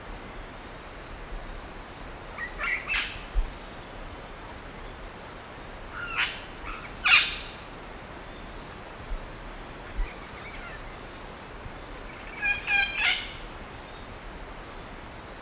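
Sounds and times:
faint background noise: 0.0s - 15.4s
imperial amazon giving loud grating squawks: 12.3s - 13.4s.

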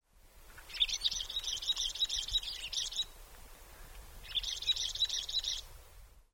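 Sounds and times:
greater yellow finch: 0.6s - 3.1s, 4.2s - 5.7s.

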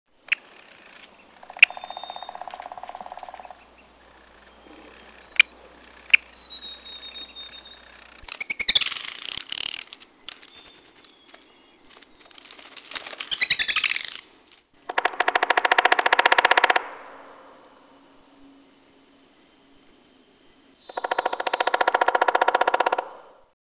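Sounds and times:
black-backed woodpecker: 0.3s - 14.3s, 14.9s - 17.2s, 20.8s - 23.5s.

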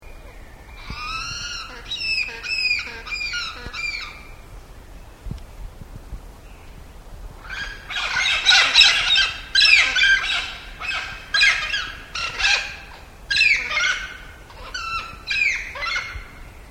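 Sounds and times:
Tucuman parrot calling: 0.8s - 4.3s, 7.4s - 16.3s.

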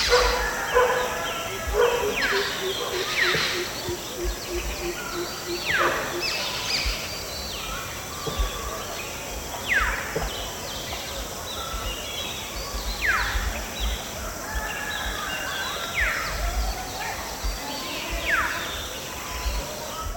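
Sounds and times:
female fulvous-breasted woodpecker contact calls in a tall tree in riverine forest: 0.0s - 7.0s
forest hiss: 0.0s - 20.1s.

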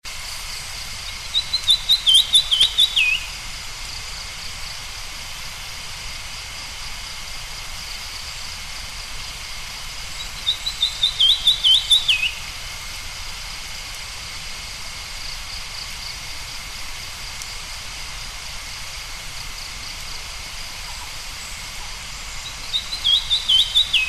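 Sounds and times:
lesser cuckooshrike calling: 1.3s - 3.3s, 10.2s - 12.5s, 22.1s - 24.0s.

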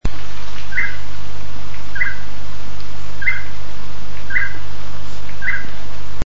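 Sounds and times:
groove-billed toucanet calling: 0.7s - 1.1s, 1.8s - 2.4s, 3.2s - 5.8s.

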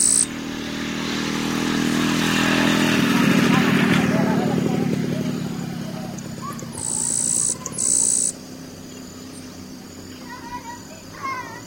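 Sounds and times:
yellow-browed sparrow giving dry insect-like buzzes: 0.0s - 10.8s
low background hum: 3.8s - 11.6s.

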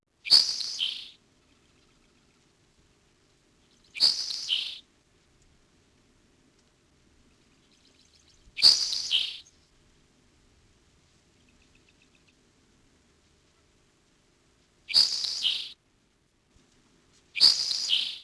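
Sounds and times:
sharp-tailed sparrow: 0.2s - 2.5s, 3.6s - 4.9s, 7.2s - 9.8s, 11.3s - 12.4s, 14.9s - 15.8s, 17.4s - 18.2s.

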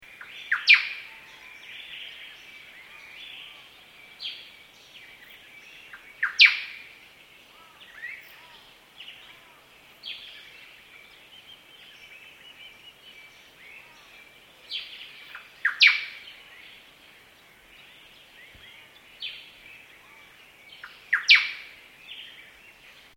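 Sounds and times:
white-browed robin calling: 0.0s - 23.1s.

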